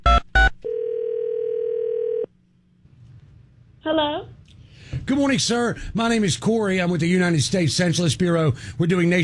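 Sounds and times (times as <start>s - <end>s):
phone dial tone: 0.1s - 2.3s
speech: 5.1s - 9.2s.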